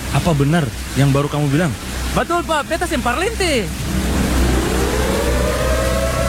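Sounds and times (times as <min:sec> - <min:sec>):
speech: 0:00.2 - 0:03.9
heavy constant low rumble: 0:03.4 - 0:06.2
warning siren wailing after a dam burst: 0:03.8 - 0:06.2.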